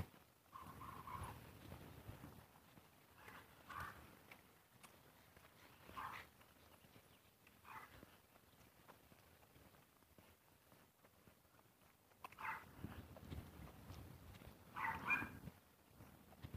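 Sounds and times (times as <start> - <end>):
faint footstep-like rustling: 0.0 - 16.5
two dogs barking and yelping on a morning walk outdoors: 0.5 - 1.5, 3.2 - 4.1, 5.6 - 6.4, 7.6 - 8.2, 12.2 - 12.7, 14.7 - 15.4.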